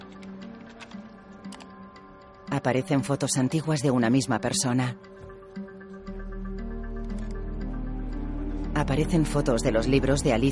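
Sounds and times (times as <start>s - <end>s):
typing on a computer keyboard: 0.0s - 1.8s
steady tonal background: 0.0s - 10.4s
speech: 2.5s - 5.2s, 8.9s - 10.4s.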